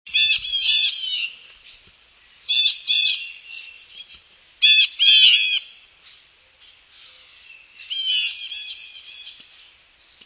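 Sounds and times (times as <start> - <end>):
blue jay flight call: 0.1 - 1.8, 2.4 - 5.9, 6.9 - 9.5.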